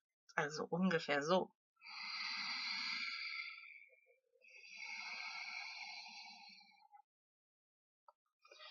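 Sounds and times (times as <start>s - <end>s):
speech: 0.4s - 2.1s
soft rushing breaths through a gently constricted throat: 1.8s - 6.9s.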